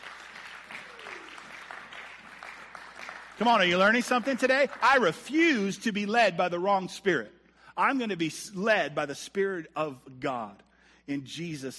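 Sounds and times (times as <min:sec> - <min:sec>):
crowd applauding in a large room: 0:00.0 - 0:05.3
speech: 0:03.4 - 0:11.7.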